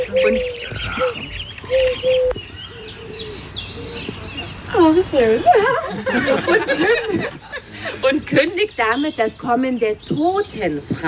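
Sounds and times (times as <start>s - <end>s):
dove cooing outdoors: 0.0s - 4.1s
small birds chirping and twittering outdoors: 0.0s - 5.9s, 6.8s - 11.0s
speech: 0.1s - 2.2s, 4.8s - 7.4s, 8.1s - 11.0s
laughter: 5.2s - 8.3s.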